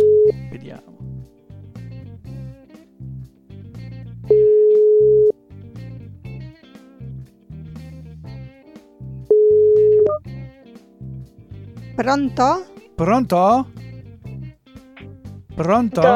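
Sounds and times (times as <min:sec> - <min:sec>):
telephone ringback tones while a phone call is placed: 0:00.0 - 0:00.4, 0:04.3 - 0:05.4, 0:09.3 - 0:10.2
speech: 0:12.0 - 0:13.7, 0:15.6 - 0:16.1.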